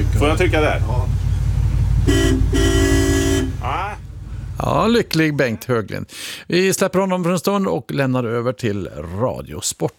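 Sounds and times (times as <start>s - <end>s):
ferry low engine rumble: 0.0s - 5.8s
speech: 0.2s - 1.2s, 2.0s - 2.6s, 4.6s - 9.9s
ferry signal horn blasts: 2.0s - 3.8s.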